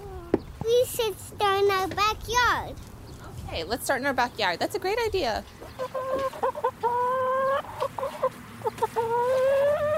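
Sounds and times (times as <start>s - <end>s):
speech: 0.6s - 2.9s, 3.5s - 6.4s
several chickens clucking and squawking: 5.4s - 9.9s.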